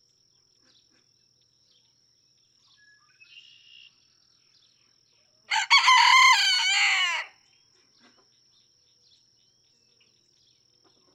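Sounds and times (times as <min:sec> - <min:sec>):
red junglefowl rooster crowing in a barnyard in Kentucky, USA: 0:05.5 - 0:07.4.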